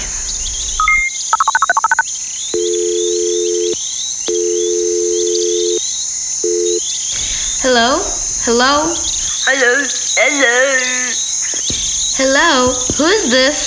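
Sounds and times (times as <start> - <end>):
crickets or insects chirping: 0.0 - 13.6
low telephone ringing tone: 0.8 - 2.0, 2.6 - 5.8, 6.4 - 6.8
phone dialing beeps: 0.8 - 2.0, 2.6 - 5.8, 6.5 - 6.8
speech: 7.8 - 11.0, 12.2 - 13.6.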